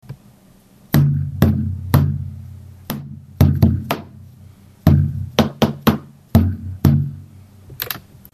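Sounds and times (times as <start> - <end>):
taiko drum: 1.0 - 2.3, 2.9 - 4.2, 4.9 - 7.2.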